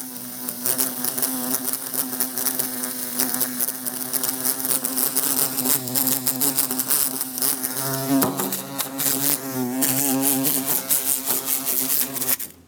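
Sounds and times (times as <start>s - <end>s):
bumblebee buzzing trying to escape through a closed window: 0.0s - 12.6s.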